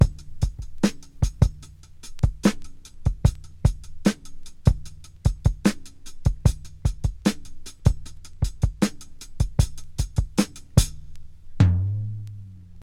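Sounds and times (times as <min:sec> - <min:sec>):
75 bpm breakbeat drum groove with kick tuned to G: 0:00.0 - 0:12.8.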